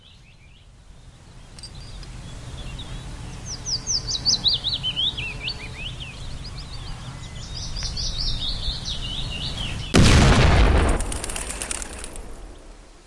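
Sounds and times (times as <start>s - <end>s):
birds chirping and twittering outdoors in an orchard: 0.0s - 10.2s
small test explosion in an orchard: 9.9s - 12.8s.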